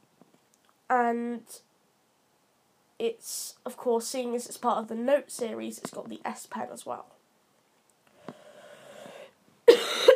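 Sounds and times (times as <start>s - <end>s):
speech: 0.9s - 1.7s, 3.0s - 7.2s
raspy wheezy breath: 8.1s - 9.4s
harsh cough: 9.6s - 10.1s.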